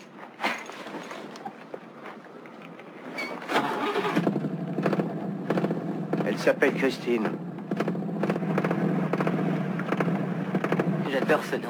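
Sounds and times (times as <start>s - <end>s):
car engine starting: 3.5s - 11.4s
speech: 6.4s - 7.5s, 11.1s - 11.6s.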